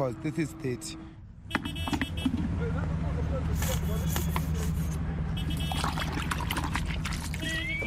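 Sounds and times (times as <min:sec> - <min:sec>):
speech: 0:00.0 - 0:01.7
traffic rumble: 0:00.0 - 0:07.8
drain water with dishwashing liquid sloshing in a bucket: 0:05.4 - 0:07.6
water splashing while washing a taxi: 0:05.4 - 0:07.8.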